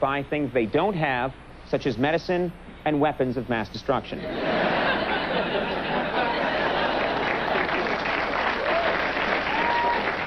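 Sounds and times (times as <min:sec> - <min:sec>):
speech: 0:00.0 - 0:05.0
laughter: 0:04.2 - 0:08.1
studio audience applause after a joke: 0:06.0 - 0:10.2.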